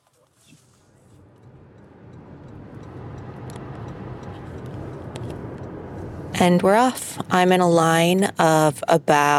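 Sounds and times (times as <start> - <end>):
low car engine and road rumble: 0.0 - 9.3
car turn signal ticking inside the vehicle: 1.3 - 6.1
speech: 6.4 - 9.3.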